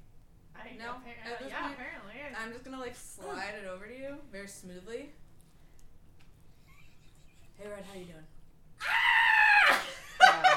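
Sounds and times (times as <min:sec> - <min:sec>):
speech: 0:00.6 - 0:05.2, 0:07.6 - 0:09.0
person screaming: 0:08.8 - 0:09.9.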